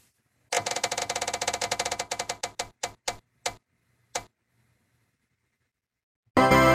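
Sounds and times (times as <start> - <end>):
prize wheel spinning with rapid clicking ticks: 0.6 - 3.6.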